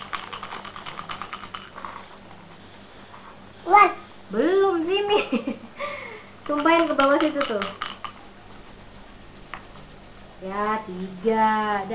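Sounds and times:
dice rattling as they are shaken during a board game: 0.0 - 2.2, 6.4 - 8.3
speech: 3.7 - 4.6, 6.5 - 7.8, 10.4 - 11.9.

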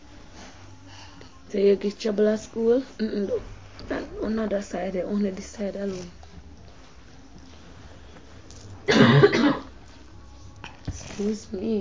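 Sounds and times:
speech: 1.5 - 6.2, 11.2 - 11.7
person coughing: 8.8 - 9.8.

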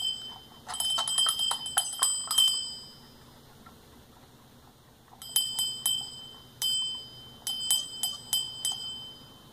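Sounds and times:
small bell being shaken and rung: 0.0 - 3.2, 5.2 - 9.5.

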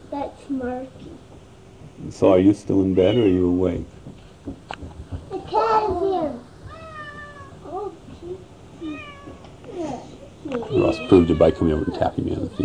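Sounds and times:
quiet rustling: 0.4 - 12.6
speech: 0.5 - 1.2, 2.0 - 4.8, 10.7 - 12.6
cat meowing: 3.0 - 3.6, 6.7 - 7.6, 8.8 - 9.4, 10.5 - 12.6.

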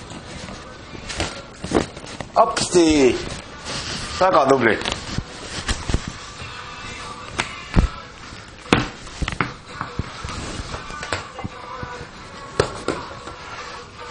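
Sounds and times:
quiet rustling background: 0.0 - 14.0
speech: 2.4 - 3.3, 4.2 - 5.0
ball rolling and bouncing during play: 8.6 - 11.6.

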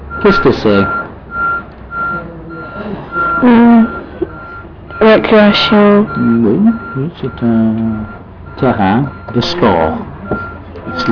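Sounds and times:
low truck engine rumble: 0.0 - 11.1
truck reversing alarm beeps: 0.1 - 11.1
speech: 0.2 - 1.0, 5.0 - 11.1.

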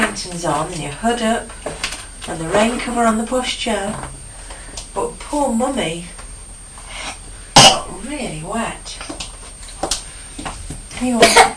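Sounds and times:
speech: 0.2 - 4.2, 5.0 - 6.2, 8.1 - 9.0, 11.0 - 11.5
young child coughing: 7.6 - 7.9, 11.2 - 11.5.

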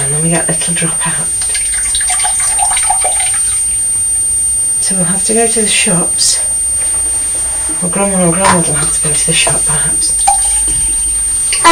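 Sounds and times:
speech: 0.2 - 1.4, 4.9 - 6.5, 7.8 - 10.3
water pouring into a bottle: 1.4 - 3.6.

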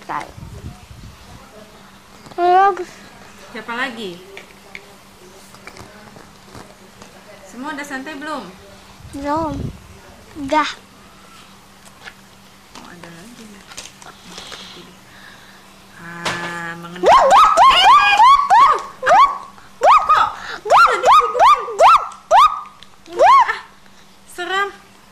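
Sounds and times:
speech: 0.1 - 0.4, 2.7 - 4.3, 7.6 - 9.7, 10.4 - 10.8
person imitating dog barking: 17.0 - 23.7.

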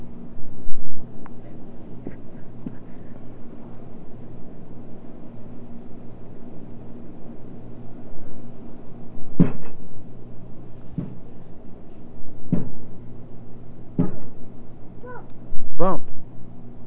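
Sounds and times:
steady low hum: 0.0 - 16.8
child's head bumping a table with a dull thud: 9.4 - 9.8, 12.5 - 12.8, 14.0 - 14.3
knocks: 9.4 - 9.8, 11.0 - 11.2, 12.5 - 12.9, 14.0 - 14.4.

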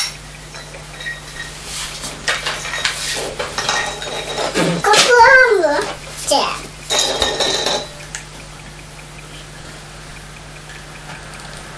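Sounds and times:
utensils clinking against a cooking pot: 0.0 - 5.2, 6.8 - 8.2
speech: 6.3 - 6.6.

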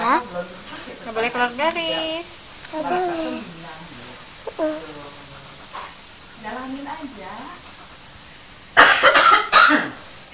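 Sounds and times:
low hiss: 0.0 - 10.3
speech: 1.1 - 3.6, 4.5 - 5.2
ordinary harsh cough: 8.8 - 10.0.

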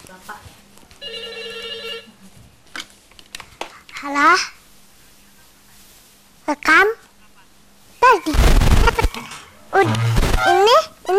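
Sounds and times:
low noise: 0.0 - 11.1
telephone ringing: 1.0 - 2.2
speech: 4.0 - 4.6, 6.5 - 7.0, 8.1 - 8.5.

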